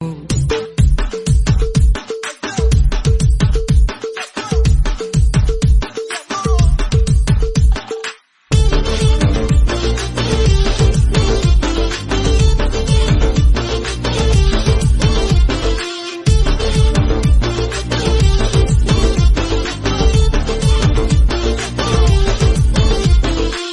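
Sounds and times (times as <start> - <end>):
Arabic instrumental ringtone music: 0.0 - 23.7.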